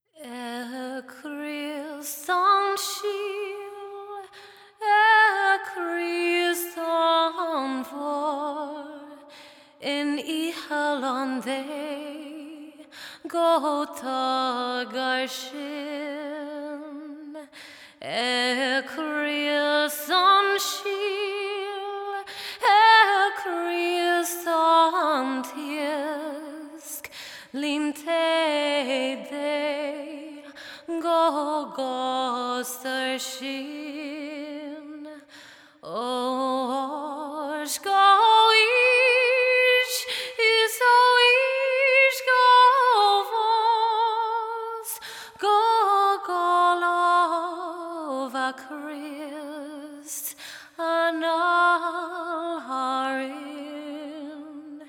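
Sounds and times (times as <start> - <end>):
woman singing classical songs in Irish Gaelic and English: 0.0 - 54.8.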